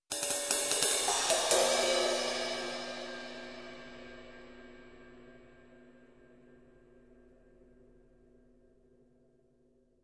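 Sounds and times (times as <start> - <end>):
fast cymbal hits: 0.1 - 5.2.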